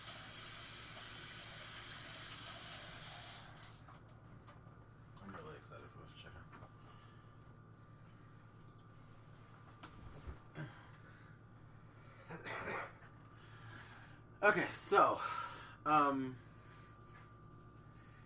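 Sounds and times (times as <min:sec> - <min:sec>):
faucet running for hand washing: 0:00.0 - 0:03.8
quieter hum: 0:05.9 - 0:18.2
speech: 0:14.4 - 0:16.4.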